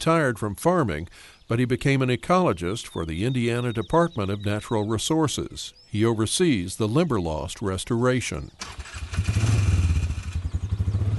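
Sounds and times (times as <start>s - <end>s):
speech: 0.0s - 9.6s
ATV engine throbbing while driving through thick prairie grasses: 8.6s - 11.1s.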